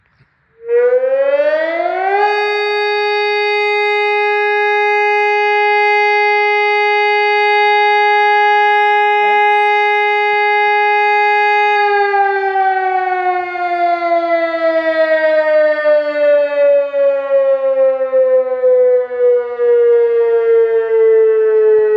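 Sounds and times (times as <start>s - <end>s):
electronic siren: 0.5s - 21.9s.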